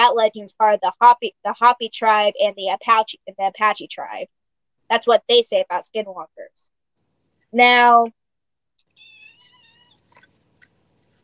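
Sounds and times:
speech: 0.1s - 6.8s, 7.5s - 8.2s
small rustling noises: 8.9s - 11.2s
cat meowing: 9.0s - 10.0s.

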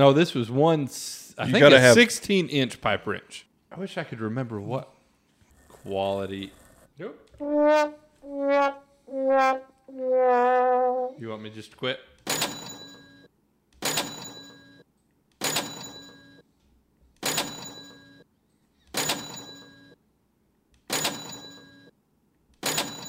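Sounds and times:
speech: 0.0s - 4.9s, 5.8s - 12.1s
cash register bell dinging: 12.3s - 14.8s, 15.4s - 16.4s, 17.2s - 18.2s, 19.0s - 20.0s, 20.9s - 21.9s, 22.6s - 23.0s.

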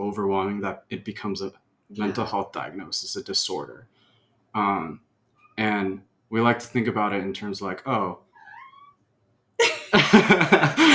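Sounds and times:
speech: 0.1s - 8.2s, 9.6s - 10.9s
cat meowing: 8.4s - 9.0s
laughter: 9.6s - 10.9s.

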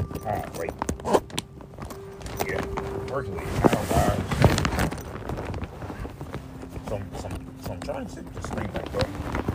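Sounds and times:
fabric rustling: 0.0s - 9.5s
speech: 0.2s - 1.2s, 3.2s - 4.0s, 6.9s - 9.4s
clothing zipper being zipped up in short raspy tugs: 3.4s - 6.7s.

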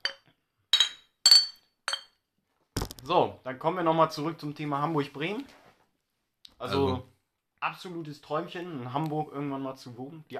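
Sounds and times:
glasses clinking: 0.0s - 2.2s
speech: 3.0s - 5.6s, 6.6s - 10.3s.

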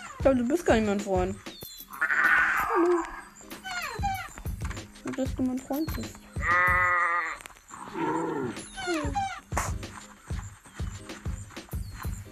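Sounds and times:
low rhythmic thuds: 0.0s - 7.1s, 8.5s - 12.3s
speech: 0.2s - 1.6s, 2.8s - 3.1s, 5.2s - 7.0s, 7.9s - 9.4s
sheep bleating: 2.0s - 3.2s, 6.4s - 9.5s.

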